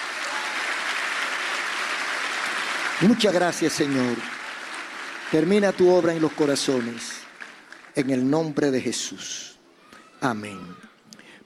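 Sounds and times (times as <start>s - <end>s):
crowd applauding at a religious service: 0.0s - 9.1s
speech: 3.0s - 4.4s, 5.3s - 7.2s, 8.0s - 9.5s, 10.2s - 10.9s.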